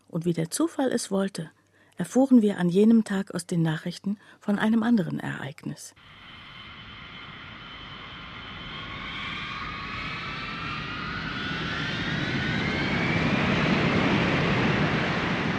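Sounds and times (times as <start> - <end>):
speech: 0.1 - 6.2
Mirage fighter jets taking off from a military air base: 6.0 - 15.5.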